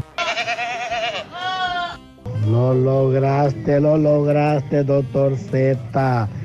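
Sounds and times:
goat bleating: 0.0s - 2.5s
speech: 2.5s - 6.4s.

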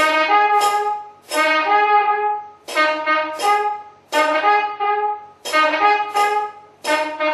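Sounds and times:
kombu horns of South Indian war and worship music blasting: 0.0s - 7.3s.

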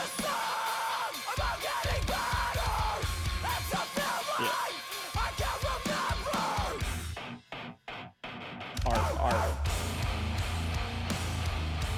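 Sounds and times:
harsh screamed vocals: 0.0s - 6.8s
distorted guitars in a hardcore breakdown: 0.0s - 11.9s.

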